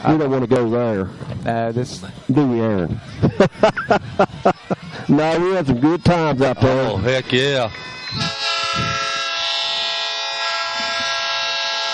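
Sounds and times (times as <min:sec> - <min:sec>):
speech: 0:00.0 - 0:08.4
laughter: 0:02.9 - 0:07.4
train horn blaring: 0:07.2 - 0:11.9.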